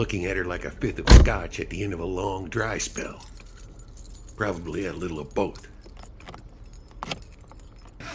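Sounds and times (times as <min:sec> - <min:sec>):
speech: 0:00.0 - 0:03.4, 0:04.4 - 0:05.7
keys jingling: 0:02.6 - 0:08.0.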